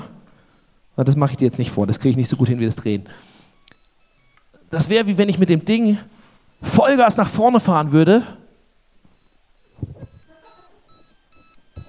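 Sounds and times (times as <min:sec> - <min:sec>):
speech: 0:01.0 - 0:03.4, 0:04.7 - 0:08.4
short high electronic beeps: 0:03.5 - 0:04.9, 0:06.2 - 0:07.6, 0:08.6 - 0:11.8.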